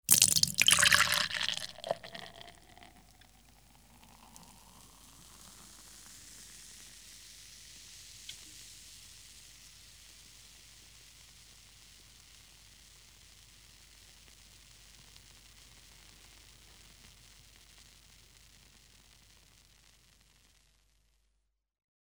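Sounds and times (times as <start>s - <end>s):
mineral water poured into a glass: 0.1s - 6.4s.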